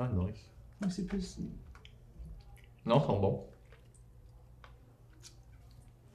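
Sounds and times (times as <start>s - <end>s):
speech: 0.0s - 1.7s, 2.8s - 3.6s
soft wet chewing of vegan gummy candy: 1.6s - 6.1s.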